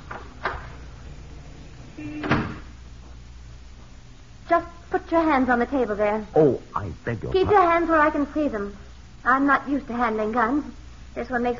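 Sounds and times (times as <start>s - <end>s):
speech: 2.0s - 2.3s, 4.5s - 11.5s
French doors to a living room opening with clunks: 2.1s - 2.7s.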